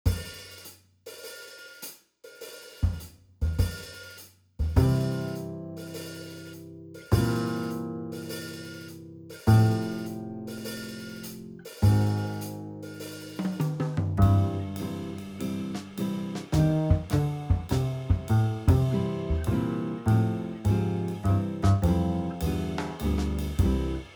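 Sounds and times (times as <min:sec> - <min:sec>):
slow big band boogie swing backing track: 0:04.7 - 0:06.3, 0:07.1 - 0:08.9, 0:09.5 - 0:24.1.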